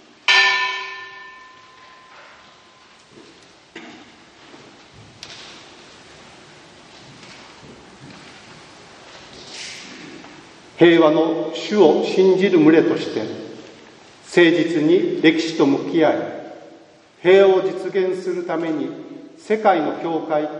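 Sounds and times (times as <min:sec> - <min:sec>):
church peace bell struck and ringing: 0:00.3 - 0:03.0
speech: 0:10.8 - 0:13.4, 0:14.4 - 0:16.4, 0:17.2 - 0:20.5.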